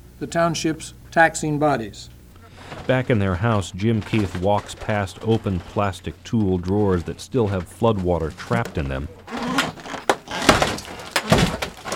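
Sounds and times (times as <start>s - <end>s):
speech: 0.2s - 9.2s
creaking and scraping: 2.4s - 11.9s
knocks and thuds: 2.6s - 11.9s
flood-damaged refrigerator door being pried open: 3.8s - 11.9s.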